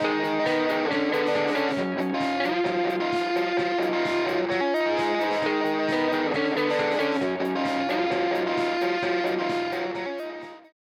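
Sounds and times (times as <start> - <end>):
solo guitars: 0.0 - 10.7.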